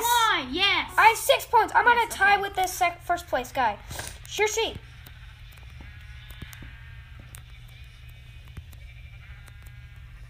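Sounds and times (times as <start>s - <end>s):
speech: 1.1s - 4.9s
sharp clicks: 3.9s - 10.2s
sheep bleating: 5.7s - 10.2s.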